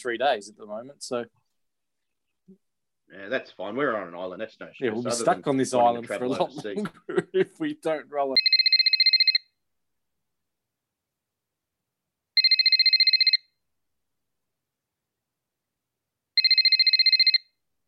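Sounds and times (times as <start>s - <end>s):
speech: 0.0s - 1.4s, 2.5s - 8.5s
laughter: 6.0s - 7.7s
phone ringtone ringing with a fast warbling pulse: 8.4s - 9.5s, 12.4s - 13.5s, 16.4s - 17.5s.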